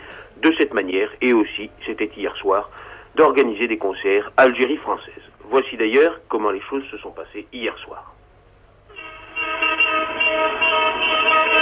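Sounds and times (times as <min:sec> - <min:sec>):
faint street noise: 0:00.0 - 0:11.6
speech: 0:00.4 - 0:08.2
car horns honking from slow-moving cars during a street demonstration in Algiers: 0:08.9 - 0:11.6.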